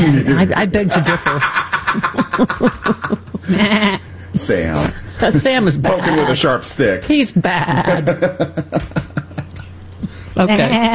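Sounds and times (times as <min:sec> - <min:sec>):
laughter: 0:00.0 - 0:05.6, 0:07.4 - 0:09.7
speech: 0:00.0 - 0:09.1, 0:10.4 - 0:10.9
sheep bleating: 0:03.5 - 0:04.0.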